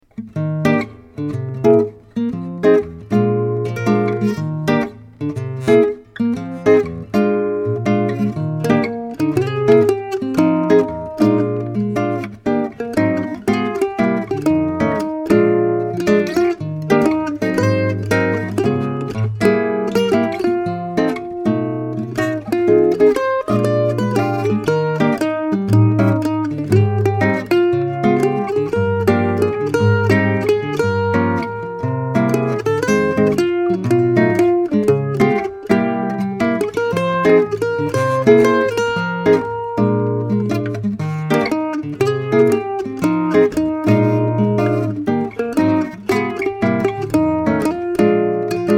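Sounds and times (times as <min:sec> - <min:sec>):
classical guitar: 0:00.0 - 0:48.7
classical mandolin: 0:00.1 - 0:48.7.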